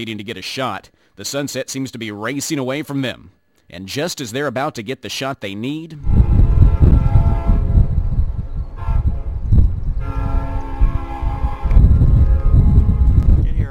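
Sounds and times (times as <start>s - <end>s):
speech: 0.0s - 6.2s
train rumbling past at sunset: 6.0s - 13.4s.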